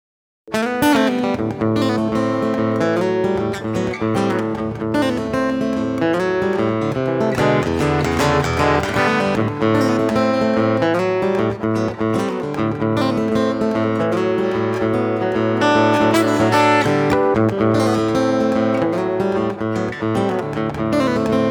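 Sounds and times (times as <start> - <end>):
direct-input guitar intro: 0.5 - 21.4.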